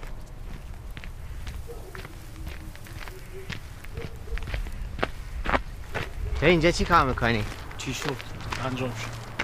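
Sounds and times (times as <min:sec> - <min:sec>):
footsteps approaching in a scrapyard garage: 0:00.0 - 0:09.4
speech: 0:06.4 - 0:09.2.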